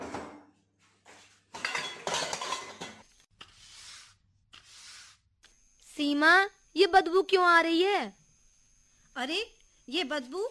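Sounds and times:
dishes and cutlery clinking while being washed: 1.5 - 3.1
speech: 6.0 - 8.2, 9.2 - 10.4.

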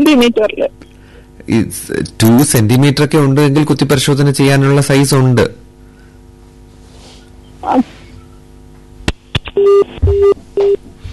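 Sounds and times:
speech: 0.1 - 0.9, 1.5 - 5.6, 7.6 - 8.0, 9.6 - 10.8
mid-pitched telephone line beeps after a call cuts off: 9.6 - 10.8.

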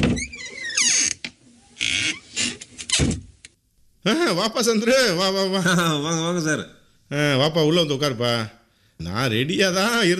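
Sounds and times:
door creaking open: 0.0 - 3.3
speech: 4.0 - 10.1.

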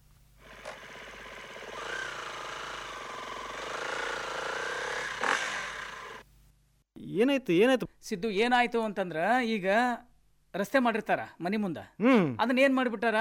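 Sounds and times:
motorbike engine droning: 0.6 - 6.2
speech: 7.2 - 13.1.

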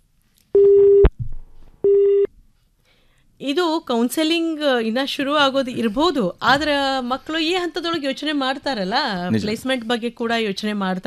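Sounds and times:
phone line beeps after a call drops in rainy weather: 0.6 - 1.1, 1.8 - 2.3
speech: 3.4 - 11.0.

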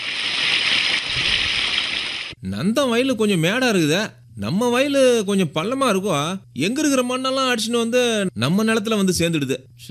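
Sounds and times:
water flowing from an electric water pump: 0.0 - 2.4
speech: 2.5 - 9.8.

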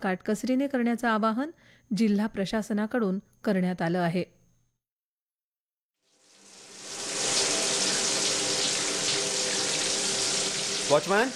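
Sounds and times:
speech: 0.0 - 4.4, 10.9 - 11.3
water running from a tap into a tank: 6.2 - 11.3.

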